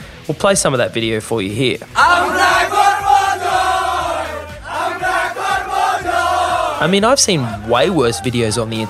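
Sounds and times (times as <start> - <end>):
speech: 0.3 - 2.6, 6.8 - 8.8
cricket team shouting and chanting in the dressing room: 2.0 - 8.8
rhythmic thumps of stamping or clapping: 2.0 - 8.8.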